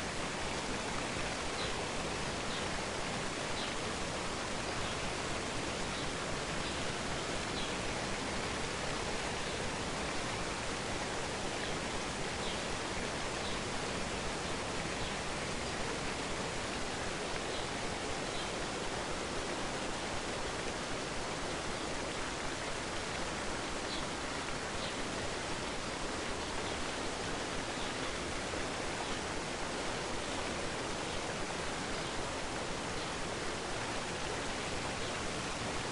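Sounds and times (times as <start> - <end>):
waterfall roaring: 0.0 - 35.9.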